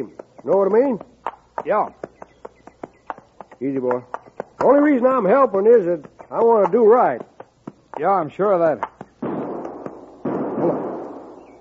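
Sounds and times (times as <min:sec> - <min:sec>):
speech: 0:00.0 - 0:02.0, 0:03.6 - 0:07.3, 0:08.0 - 0:08.9
rifle shots fired as a signal from a grove: 0:09.2 - 0:11.5.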